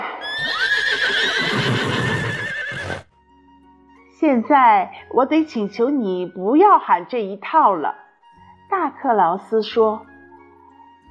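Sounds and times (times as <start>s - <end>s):
horse neighing: 0.1s - 3.1s
speech: 4.2s - 8.0s, 8.7s - 10.1s.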